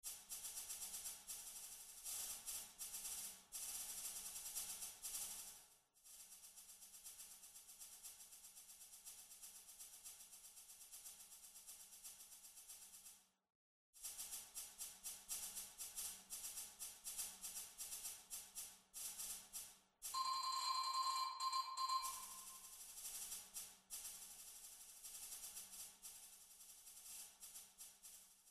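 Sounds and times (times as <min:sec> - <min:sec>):
snare drum track: 0:21.0 - 0:22.6.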